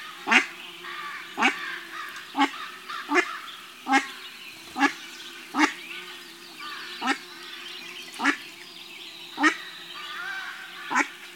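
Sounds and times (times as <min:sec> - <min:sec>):
American black duck giving hoarse quacks: 0:00.2 - 0:04.2, 0:10.8 - 0:11.2.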